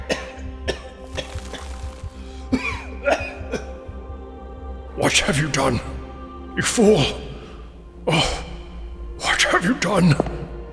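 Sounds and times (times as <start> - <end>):
person coughing and sputtering: 0.0 - 3.8, 6.7 - 10.5
speech: 5.0 - 5.9, 6.6 - 7.2, 8.1 - 8.4, 9.8 - 10.3.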